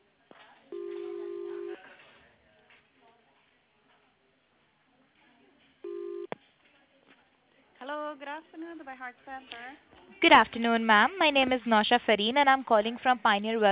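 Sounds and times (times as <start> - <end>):
telephone keypad tones dialing an extension: 0.8 - 1.8, 5.9 - 6.3
speech: 7.9 - 13.6.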